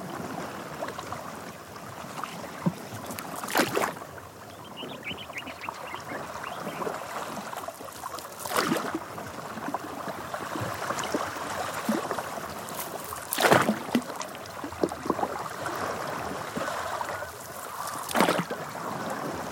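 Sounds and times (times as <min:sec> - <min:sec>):
water rippling along a dugout canoe hull in the Okavango Delta: 0:00.0 - 0:19.5
canoe pole stroke swish and splash in the Okavango Delta: 0:03.1 - 0:04.0, 0:07.9 - 0:09.0, 0:10.6 - 0:15.9, 0:16.5 - 0:18.6
faint bird chirping in the Okavango Delta: 0:04.5 - 0:07.0.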